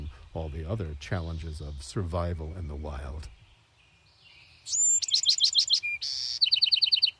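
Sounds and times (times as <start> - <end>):
songbird singing a varied fast phrase with whistle, chirps and trill: 0.0 - 7.1
speech: 0.4 - 3.4, 4.6 - 4.8.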